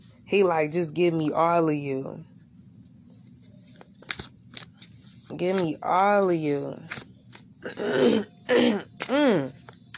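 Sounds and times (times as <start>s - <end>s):
speech: 0.3s - 2.3s, 5.3s - 9.9s
person clearing their throat: 7.6s - 9.5s.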